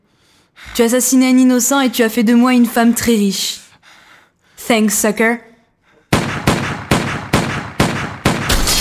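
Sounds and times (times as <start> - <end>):
speech: 0.8 - 3.6, 4.7 - 5.5
gunshots from a gun whose magazine is emptied: 6.1 - 8.7.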